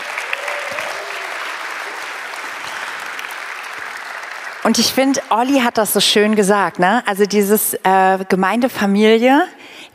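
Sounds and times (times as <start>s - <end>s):
audience applause: 0.0s - 5.2s
speech: 4.6s - 9.9s.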